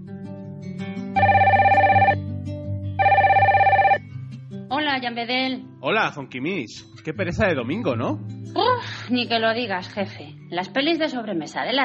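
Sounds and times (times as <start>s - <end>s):
telephone ringing with a warbling trill: 1.2s - 2.2s, 3.0s - 4.0s
speech: 5.0s - 11.8s.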